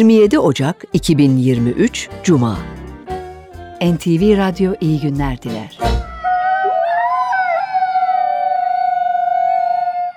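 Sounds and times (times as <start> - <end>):
speech: 0.0 - 2.8, 3.8 - 6.0
wolves howling in chorus: 6.0 - 10.1.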